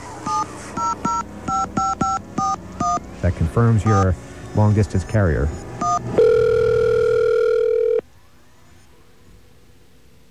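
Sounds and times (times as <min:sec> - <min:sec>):
touch-tone telephone keypad dialing a number: 0:00.2 - 0:03.0, 0:03.8 - 0:04.1, 0:05.8 - 0:08.0
speech: 0:03.2 - 0:05.6.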